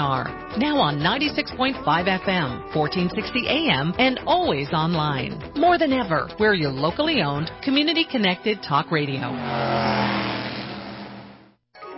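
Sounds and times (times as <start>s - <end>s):
speech: 0.0s - 10.3s
muscle car engine revving: 8.6s - 11.6s.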